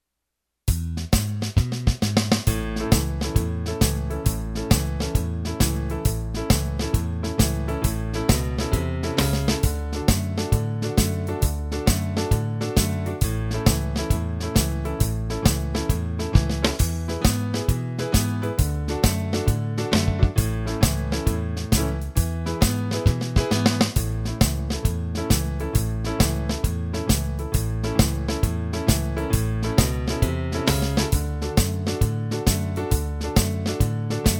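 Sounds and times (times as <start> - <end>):
fast blues shuffle in A: 0.7 - 34.3.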